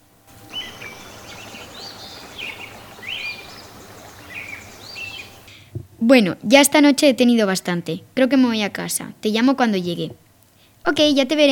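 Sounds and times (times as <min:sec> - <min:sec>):
soft steady hiss: 0:00.0 - 0:11.4
birds chirping and singing: 0:00.5 - 0:05.5
speech: 0:06.0 - 0:10.2, 0:10.8 - 0:11.4.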